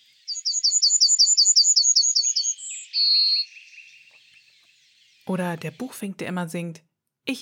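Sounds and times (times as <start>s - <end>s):
yellowhammer singing: 0.0s - 6.7s
speech: 5.3s - 7.4s.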